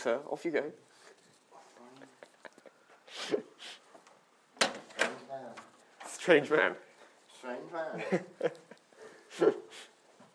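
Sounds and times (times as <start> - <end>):
speech: 0.0 - 1.1, 6.3 - 8.6, 9.4 - 9.6
door opening and closing: 4.6 - 6.2.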